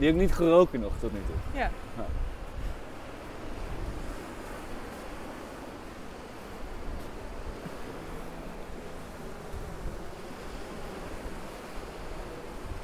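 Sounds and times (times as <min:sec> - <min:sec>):
speech: 0:00.0 - 0:02.4
wind noise: 0:00.0 - 0:05.0, 0:09.4 - 0:12.8
North Sea waves washing onto a shore: 0:01.3 - 0:12.8.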